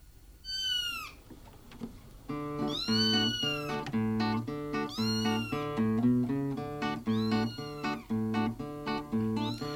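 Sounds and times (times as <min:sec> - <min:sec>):
cat meowing: 0:00.4 - 0:01.2, 0:02.6 - 0:03.9, 0:04.7 - 0:05.8, 0:07.0 - 0:08.1, 0:09.2 - 0:09.7
bouncy instrumental tune: 0:02.3 - 0:09.7.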